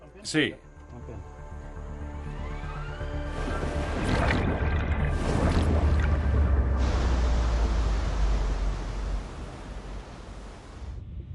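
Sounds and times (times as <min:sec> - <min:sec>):
speech: 0:00.2 - 0:01.3
water pumping from submersible ballast pumps: 0:02.9 - 0:10.9.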